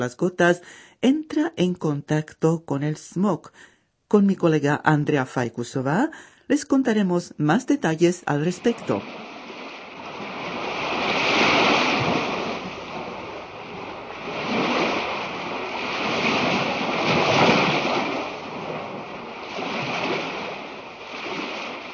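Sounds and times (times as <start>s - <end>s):
speech: 0.0s - 9.2s
ocean waves breaking in rough sea: 8.3s - 21.9s
wind gusting across the microphone: 8.6s - 21.9s.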